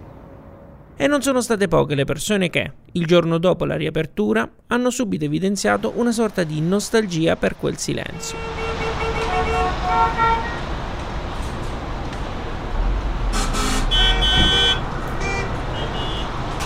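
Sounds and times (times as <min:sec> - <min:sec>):
busy city traffic rumbling: 0:00.0 - 0:03.2, 0:04.9 - 0:16.6
speech: 0:01.0 - 0:08.7
car horns tooting and blaring: 0:08.1 - 0:10.8, 0:13.3 - 0:16.6.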